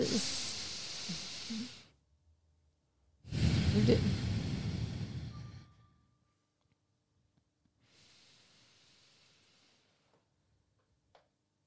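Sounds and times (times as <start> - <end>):
speech: 0.0 - 0.4, 3.8 - 4.3
slow deep breathing in and out: 0.0 - 1.9, 3.2 - 5.9, 7.8 - 10.2.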